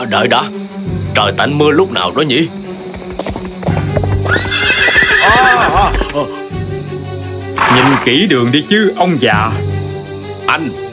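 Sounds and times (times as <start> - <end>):
speech: 0.1 - 0.6, 1.2 - 2.7, 6.1 - 6.4, 7.7 - 9.7, 10.5 - 10.8
ridden horse's hooves clip-clopping on a road: 2.5 - 6.4
ridden horse neighing: 3.1 - 6.4, 7.6 - 8.2.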